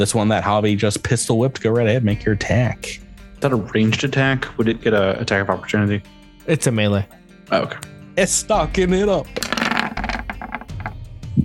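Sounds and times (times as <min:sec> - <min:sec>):
speech: 0:00.0 - 0:10.0
dice rolling on a hard tabletop: 0:09.4 - 0:11.0.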